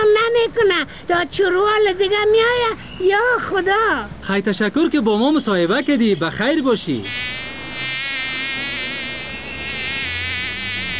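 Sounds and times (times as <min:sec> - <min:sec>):
speech: 0:00.8 - 0:07.5
housefly buzzing: 0:07.1 - 0:10.9.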